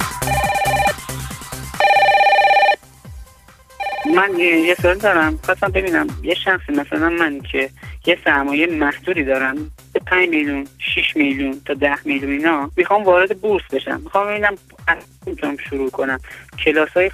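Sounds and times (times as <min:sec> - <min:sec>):
loud steady trilling telephone ring: 0:00.2 - 0:01.2, 0:01.7 - 0:02.8, 0:03.8 - 0:04.7
speech: 0:04.3 - 0:17.1.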